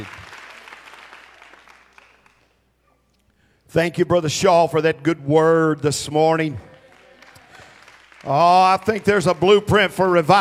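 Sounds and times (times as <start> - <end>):
church audience clapping: 0.0 - 2.6, 5.6 - 10.4
speech: 3.7 - 6.7, 8.2 - 10.4.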